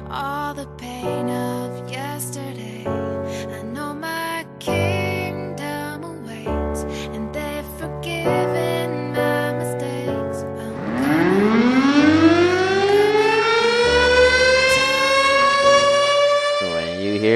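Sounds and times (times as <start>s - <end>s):
music: 0.0s - 17.3s
civil defense siren wailing: 10.7s - 17.3s.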